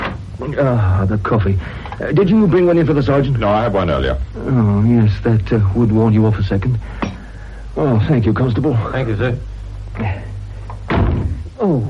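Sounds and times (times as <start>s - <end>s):
steady low hum: 0.0s - 11.8s
speech: 0.4s - 7.2s, 7.8s - 10.3s, 11.6s - 11.8s
office door slamming: 10.9s - 11.5s.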